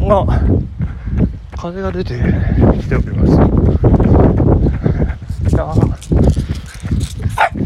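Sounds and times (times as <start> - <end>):
speech: 0.1 - 0.7, 1.6 - 4.8, 5.6 - 6.5
dog barking: 7.4 - 7.6.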